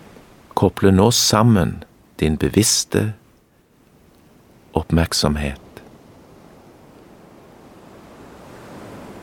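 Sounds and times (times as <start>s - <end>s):
speech: 0.6s - 3.2s, 4.8s - 5.6s
ocean waves surf roar: 5.4s - 9.2s.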